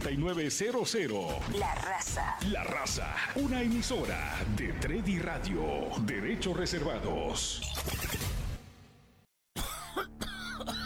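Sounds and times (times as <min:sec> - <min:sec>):
speech: 0:00.0 - 0:08.2
person coughing harshly: 0:09.6 - 0:10.8.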